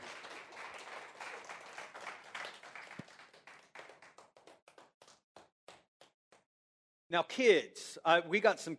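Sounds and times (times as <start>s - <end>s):
crowd applauding for performers: 0.0s - 5.8s
speech: 7.1s - 8.7s.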